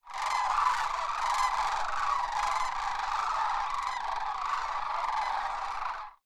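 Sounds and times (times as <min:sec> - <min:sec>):
Grus canadensis calling in Denali National Park: 0:00.0 - 0:06.2.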